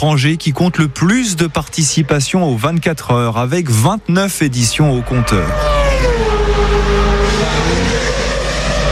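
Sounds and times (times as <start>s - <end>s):
speech: 0.0s - 7.9s
Mazda 787B race car engine screaming past on track at Le Mans: 4.6s - 8.9s.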